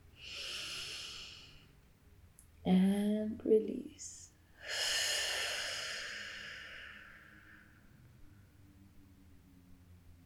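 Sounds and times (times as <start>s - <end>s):
soft inhale during a guided meditation: 0.1s - 1.8s, 4.6s - 8.5s
speech: 2.6s - 4.2s.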